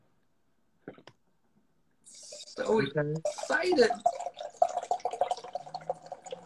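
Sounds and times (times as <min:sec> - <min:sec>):
nitro sweet potato ale fast-poured into a glass: 0:02.1 - 0:06.4
speech: 0:02.6 - 0:04.2.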